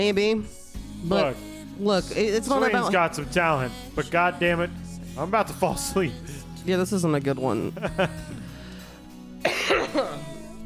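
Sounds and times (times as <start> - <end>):
speech: 0.0 - 8.4
quiet music: 0.0 - 10.6
person giving a staged harsh throaty cough: 9.4 - 10.3.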